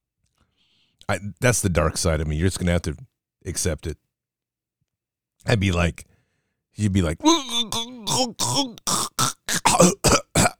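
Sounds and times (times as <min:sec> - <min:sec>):
speech: 0:01.1 - 0:04.0, 0:05.4 - 0:06.1, 0:06.8 - 0:07.6, 0:08.2 - 0:10.2
voice imitating someone coughing and sputtering out water: 0:07.2 - 0:10.5.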